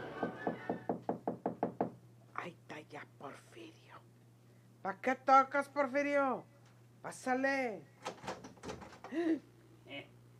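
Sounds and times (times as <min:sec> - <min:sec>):
door hinge creaking: 0:00.2 - 0:01.8
speech: 0:04.8 - 0:07.9, 0:09.1 - 0:10.1.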